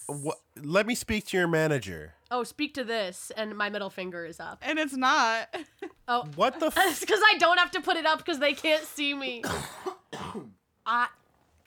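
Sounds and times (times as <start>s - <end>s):
speech: 0.1s - 11.2s
sick man clearing throat with a voiced grunt: 9.4s - 10.6s
sick man coughing: 9.4s - 10.6s.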